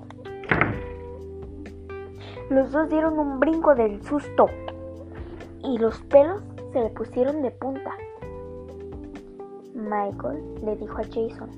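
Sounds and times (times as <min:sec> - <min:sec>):
door slamming shut with a heavy thud: 0:00.4 - 0:01.0
speech: 0:02.5 - 0:04.7, 0:05.6 - 0:08.0, 0:09.9 - 0:11.5.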